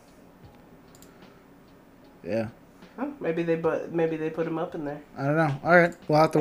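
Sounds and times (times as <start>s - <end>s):
quiet room hum: 0.0s - 6.4s
keyboard typing: 0.5s - 1.2s
speech: 2.2s - 6.4s.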